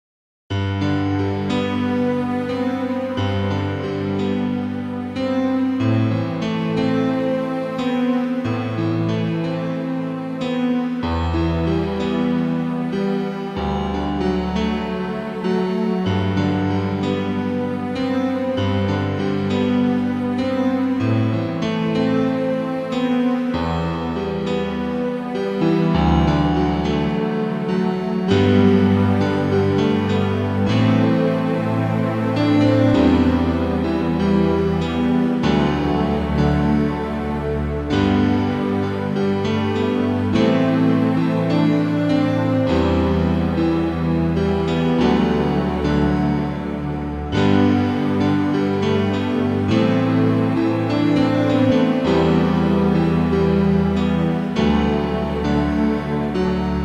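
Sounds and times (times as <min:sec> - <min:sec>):
synthesizer: 0:00.5 - 0:56.8.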